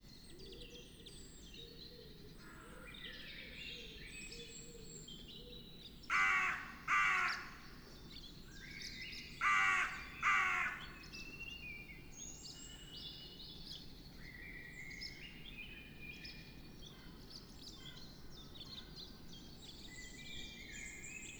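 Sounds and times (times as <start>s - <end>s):
carrion crow calls exchanged between individual and group: 6.1s - 7.8s, 9.3s - 11.1s.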